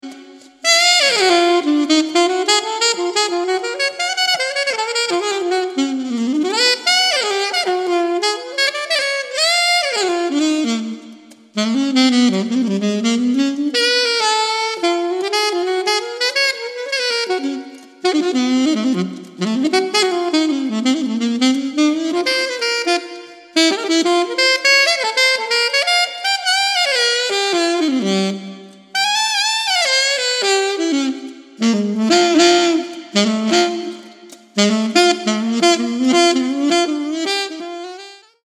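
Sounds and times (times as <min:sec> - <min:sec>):
solo jazz saxophone: 0:00.0 - 0:38.4.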